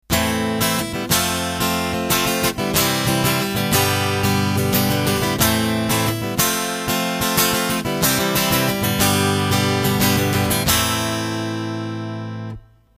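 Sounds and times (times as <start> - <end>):
Godin LGX guitar through piezo pickup: 0.0 - 12.9.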